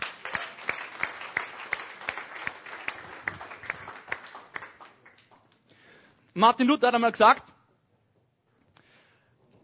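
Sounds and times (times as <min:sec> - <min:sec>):
audience applause: 0:00.0 - 0:05.5
speech: 0:06.4 - 0:07.5.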